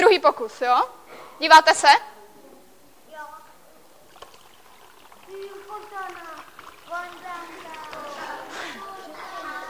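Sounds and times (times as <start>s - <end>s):
speech: 0.1s - 2.1s
water streaming out through holes in a bottle: 4.1s - 9.1s
excited children chattering: 5.2s - 9.6s.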